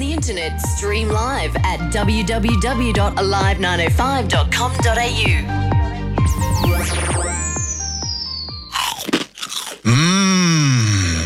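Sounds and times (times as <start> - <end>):
speech: 0.2 - 5.8
swooping electronic sweeps: 6.2 - 8.7
crunching bites of slow-cooked crispy pork crackling: 8.7 - 10.3.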